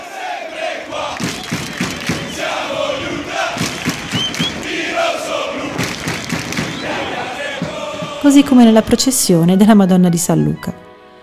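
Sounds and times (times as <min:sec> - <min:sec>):
large crowd of football fans chanting and shouting in a stadium: 0:00.0 - 0:09.4
thumps in a stadium crowd: 0:01.1 - 0:09.2
speech: 0:08.2 - 0:10.9.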